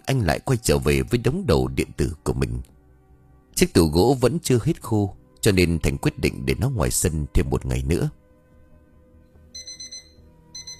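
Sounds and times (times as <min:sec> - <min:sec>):
low steady background: 0:00.0 - 0:10.7
speech: 0:00.1 - 0:02.7, 0:03.6 - 0:08.2
phone alarm clock ringing: 0:09.6 - 0:10.7.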